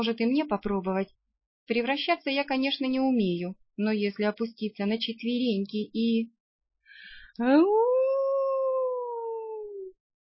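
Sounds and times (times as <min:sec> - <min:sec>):
speech: 0:00.0 - 0:06.4, 0:07.0 - 0:07.9
woman's short breathy intake: 0:06.9 - 0:07.4
woman imitating a wolf howl with booming echo: 0:07.4 - 0:09.9.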